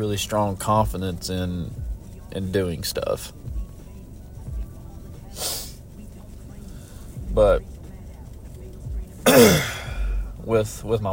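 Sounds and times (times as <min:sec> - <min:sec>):
speech: 0:00.0 - 0:03.4, 0:07.4 - 0:07.7, 0:10.5 - 0:11.1
person coughing: 0:09.2 - 0:10.2.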